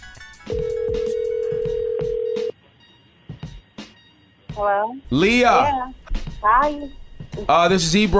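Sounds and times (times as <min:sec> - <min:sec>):
telephone ringback tone: 0:00.5 - 0:02.6
speech: 0:04.6 - 0:08.1.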